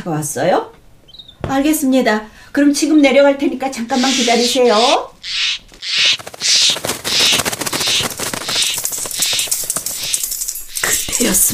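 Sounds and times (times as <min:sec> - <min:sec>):
speech: 0:00.0 - 0:00.8, 0:01.4 - 0:05.4, 0:11.2 - 0:11.5
bird screaming in distress: 0:03.9 - 0:11.4.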